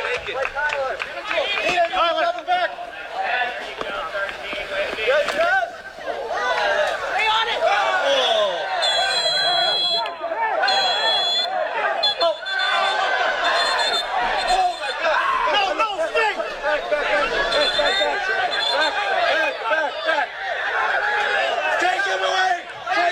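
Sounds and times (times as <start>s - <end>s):
soccer fans yelling and shouting in stands: 0.0s - 23.1s
shrill whistle-like tones: 7.9s - 15.3s, 17.0s - 20.0s
laughter: 10.7s - 23.1s.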